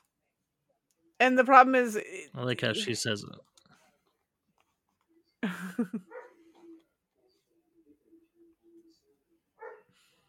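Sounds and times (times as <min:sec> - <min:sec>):
speech: 0:01.2 - 0:03.5, 0:05.4 - 0:06.1
dog barking: 0:06.1 - 0:06.4, 0:09.6 - 0:10.0.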